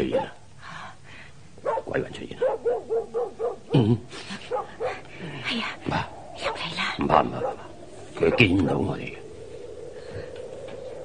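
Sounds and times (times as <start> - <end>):
dog barking: 0.0 - 0.4, 1.6 - 3.7, 4.5 - 5.0, 7.4 - 7.6
speech: 1.9 - 4.4, 7.0 - 7.6, 8.2 - 9.2.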